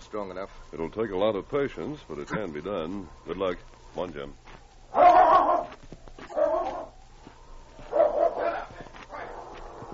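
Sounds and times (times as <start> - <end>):
speech: 0.1 - 4.6
dog barking: 4.9 - 7.0, 7.8 - 9.9.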